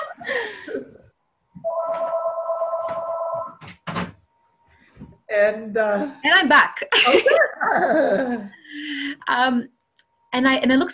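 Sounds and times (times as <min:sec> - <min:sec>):
telephone ringing with a steady electronic tone: 0:01.6 - 0:03.6
speech: 0:05.4 - 0:10.9.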